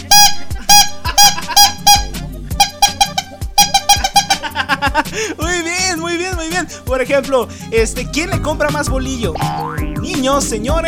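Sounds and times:
bread vendor's trumpet tooting while selling bolillo rolls: 0:00.0 - 0:04.6
laughter: 0:00.4 - 0:01.8, 0:04.0 - 0:05.5
speech: 0:06.5 - 0:10.8.

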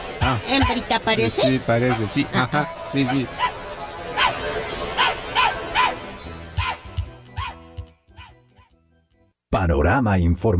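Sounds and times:
speech: 0:00.3 - 0:03.5, 0:09.9 - 0:10.5
small dog barking and yipping: 0:05.0 - 0:06.0, 0:06.6 - 0:07.6.

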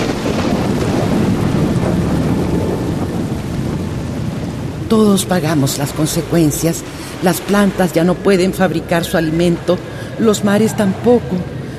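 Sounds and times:
deep continuous rumble of thunder: 0:00.0 - 0:11.7
gusty wind: 0:00.0 - 0:11.7
heavy rain: 0:00.0 - 0:11.7
speech: 0:04.9 - 0:11.6.

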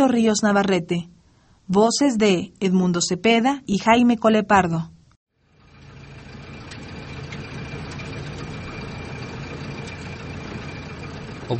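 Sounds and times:
speech: 0:00.0 - 0:05.0
car engine running: 0:05.4 - 0:11.5.

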